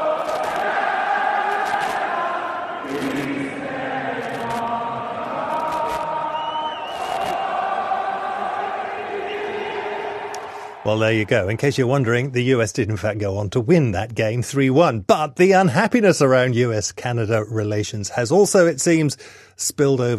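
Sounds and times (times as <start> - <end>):
packed hockey arena crowd singing and cheering through an anthem: 0.0 - 12.3
sharp whistles from hockey arena crowd: 6.2 - 7.9
speech: 10.8 - 20.1.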